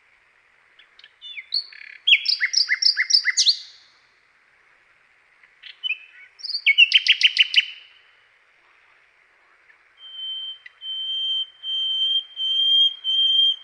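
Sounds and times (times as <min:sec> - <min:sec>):
common nightingale singing: 0:00.7 - 0:04.0, 0:05.4 - 0:08.3, 0:09.4 - 0:13.6.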